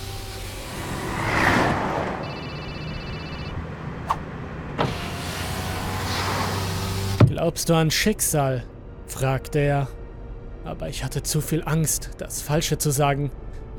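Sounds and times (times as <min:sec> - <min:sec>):
car power window humming open: 0:00.0 - 0:03.6, 0:04.7 - 0:07.4
road noise: 0:00.0 - 0:09.0
phone ringing with electronic tone inside a car: 0:02.2 - 0:03.6
speech: 0:07.4 - 0:10.0, 0:10.6 - 0:13.7.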